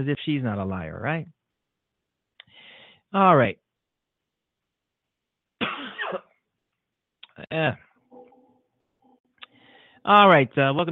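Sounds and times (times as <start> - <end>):
speech: 0.0 - 1.4, 3.1 - 3.6, 7.4 - 7.9, 10.0 - 10.9
raspy throat-clearing coughs: 5.6 - 6.5.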